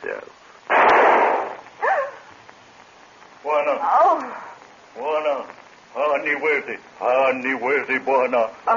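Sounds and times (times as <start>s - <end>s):
speech: 0.0s - 0.5s, 3.4s - 8.7s
gunshot: 0.7s - 1.7s
high cry: 1.8s - 2.2s.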